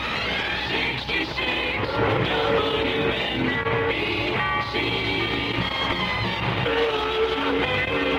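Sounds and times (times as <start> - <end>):
train rumbling: 0.0 - 8.1
train horn blasts: 1.8 - 8.1.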